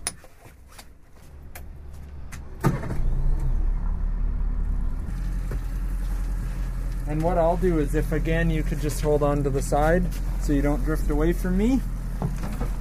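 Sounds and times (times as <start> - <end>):
motorboat engine starting up on a bay: 2.6 - 12.7
speech: 7.1 - 11.9.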